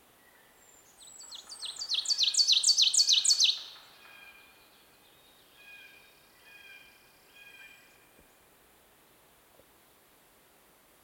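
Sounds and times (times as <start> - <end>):
Ovenbird song: 0.2 - 8.1.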